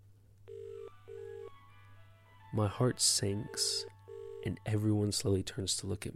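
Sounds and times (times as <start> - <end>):
electronic telephone ringback tone heard down the line: 0.5 - 1.5, 3.4 - 4.8
speech: 2.5 - 6.1.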